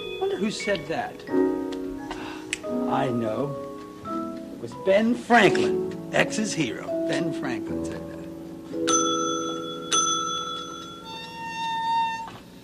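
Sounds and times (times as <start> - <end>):
bell ringing: 0.0 - 1.5, 8.8 - 12.3
speech: 0.4 - 1.5, 2.7 - 3.6, 4.6 - 8.1.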